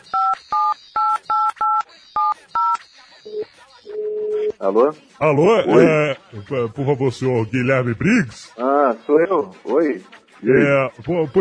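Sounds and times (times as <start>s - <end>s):
touch-tone telephone keypad beeps as a phone number is dialed: 0.1s - 4.2s
speech: 4.6s - 11.3s.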